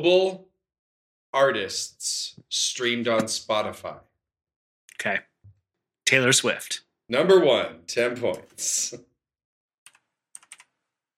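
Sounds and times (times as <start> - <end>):
speech: 0.0 - 0.5, 1.3 - 4.1, 5.0 - 5.3, 6.1 - 9.1
clicky keystrokes on a computer keyboard: 9.9 - 10.7.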